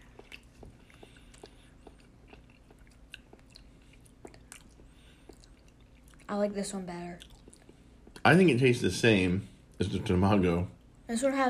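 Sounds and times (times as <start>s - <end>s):
chewing raw tuna sashimi without rice: 0.0s - 8.3s
speech: 6.3s - 7.4s, 8.2s - 11.4s.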